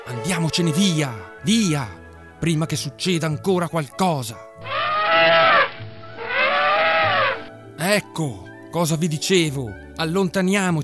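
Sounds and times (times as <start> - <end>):
speech: 0.1 - 5.4, 7.8 - 10.8
huge elephant trumpeting: 4.6 - 7.5.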